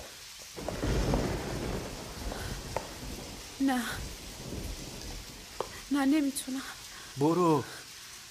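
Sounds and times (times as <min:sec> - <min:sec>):
steady rain: 0:00.0 - 0:08.2
low rolling thunder: 0:00.6 - 0:07.0
speech: 0:03.6 - 0:04.2, 0:05.9 - 0:07.8.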